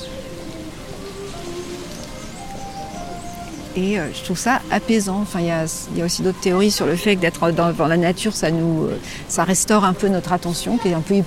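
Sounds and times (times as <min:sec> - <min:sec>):
faint bird calls: 0:00.0 - 0:06.7
wind rustling garden plant leaves: 0:00.0 - 0:11.2
speech: 0:03.8 - 0:11.2.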